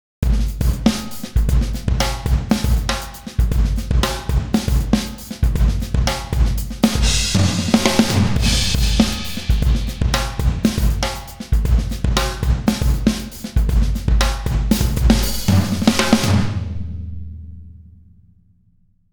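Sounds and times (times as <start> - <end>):
multi comp groove: 0.2 - 18.2.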